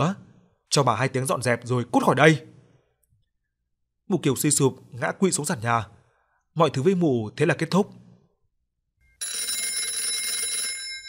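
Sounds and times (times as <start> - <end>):
speech: 0.0 - 2.5, 4.1 - 6.0, 6.6 - 8.0
telephone bell ringing: 9.0 - 11.0.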